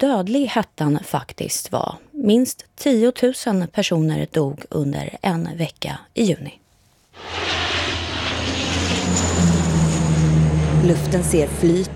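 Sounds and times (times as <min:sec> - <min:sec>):
speech: 0:00.0 - 0:06.6, 0:10.8 - 0:11.9
firefighting propeller aircraft flying overhead: 0:07.2 - 0:11.9.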